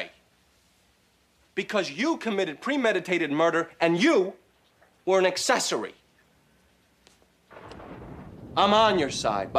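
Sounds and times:
speech: 0:01.6 - 0:04.4, 0:05.0 - 0:06.0, 0:08.6 - 0:09.5
loud thunderclap with broad crackling rumble: 0:07.5 - 0:09.5.

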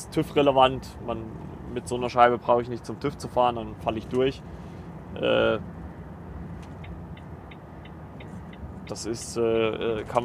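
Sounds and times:
car engine and road noise rumble: 0:00.0 - 0:10.2
speech: 0:00.2 - 0:04.6, 0:05.2 - 0:05.8, 0:08.9 - 0:10.2
car turn signal clicking while moving over on the motorway: 0:06.6 - 0:09.4.

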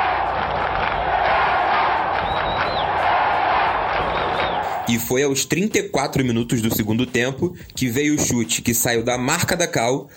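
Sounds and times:
football stadium crowd roaring and chanting in support: 0:00.0 - 0:04.9
sharp whistles: 0:02.2 - 0:03.0, 0:04.1 - 0:04.8
speech: 0:04.9 - 0:10.1.

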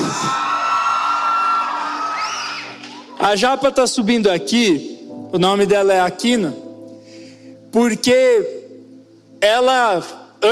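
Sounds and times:
crowd shouting and whooping: 0:00.0 - 0:03.3
speech: 0:03.2 - 0:06.6, 0:07.7 - 0:08.6, 0:09.4 - 0:10.5.

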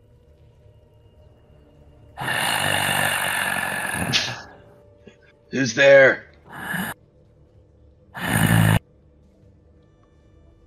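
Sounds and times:
heavy rasping monstrous breathing: 0:02.2 - 0:04.7, 0:06.5 - 0:07.0, 0:08.2 - 0:08.8
speech: 0:05.6 - 0:06.2.

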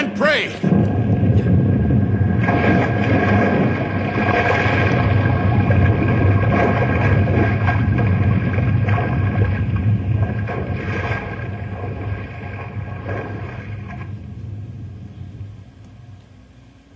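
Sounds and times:
churning water: 0:00.0 - 0:15.0
grinding rumble of splitting iceberg: 0:00.0 - 0:16.9
speech: 0:00.3 - 0:00.7
iceberg cracking and splitting in two: 0:00.7 - 0:14.1.

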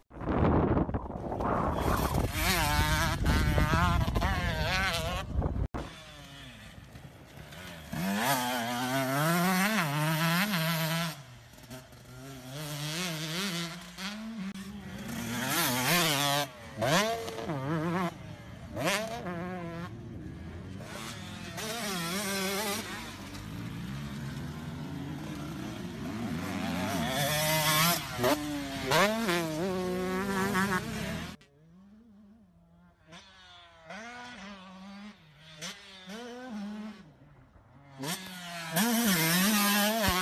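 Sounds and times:
new motocross motorcycle engine revving: 0:01.3 - 0:40.2.

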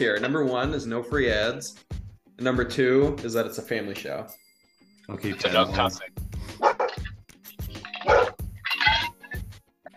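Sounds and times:
speech: 0:00.0 - 0:04.4, 0:05.1 - 0:06.7
dog barking: 0:06.6 - 0:07.1, 0:08.0 - 0:08.4.

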